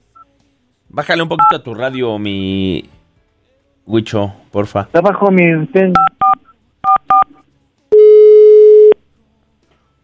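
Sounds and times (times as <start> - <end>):
speech: 0.9 - 3.0, 3.9 - 6.1
steady lower telephone tone: 7.9 - 9.0.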